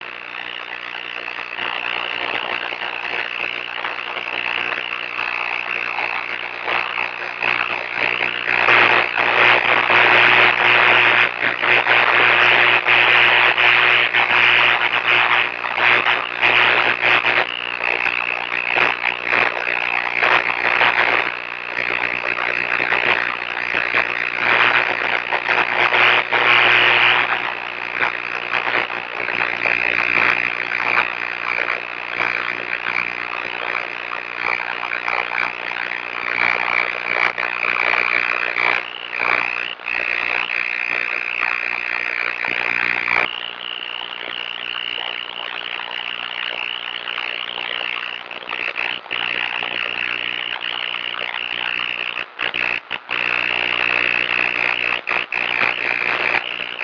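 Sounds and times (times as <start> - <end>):
noise: 0.0 - 56.8.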